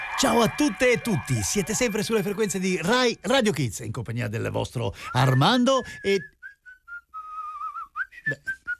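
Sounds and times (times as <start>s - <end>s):
speech: 0.2s - 6.3s
person whistling a short light tune: 5.0s - 8.7s.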